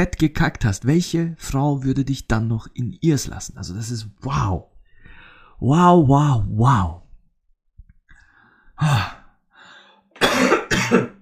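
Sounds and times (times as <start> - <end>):
speech: 0.0 - 4.7, 5.6 - 7.0, 8.8 - 9.2, 10.9 - 11.2
person coughing: 10.2 - 11.2.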